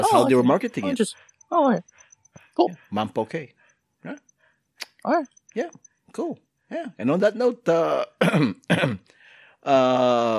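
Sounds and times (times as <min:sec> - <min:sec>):
speech: 0:00.1 - 0:02.0, 0:02.6 - 0:04.3, 0:05.0 - 0:10.3
throat clearing: 0:08.2 - 0:09.1.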